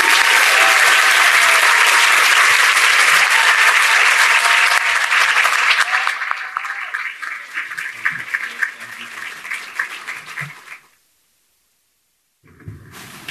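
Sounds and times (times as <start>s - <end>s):
large audience applause at a library event: 0.0s - 11.0s.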